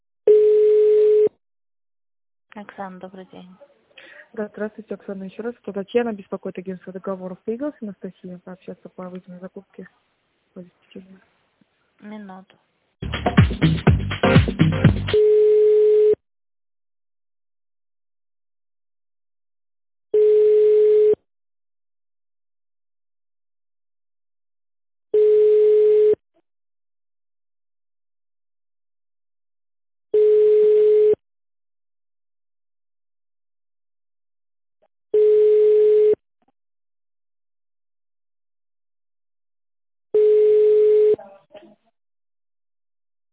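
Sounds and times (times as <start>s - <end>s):
telephone busy signal: 0.3s - 1.3s, 15.2s - 16.2s, 20.2s - 21.2s, 25.2s - 26.2s, 30.2s - 31.2s, 35.2s - 36.2s, 40.2s - 41.2s
speech: 2.6s - 3.7s, 4.3s - 11.3s, 12.0s - 13.8s, 14.4s - 15.3s.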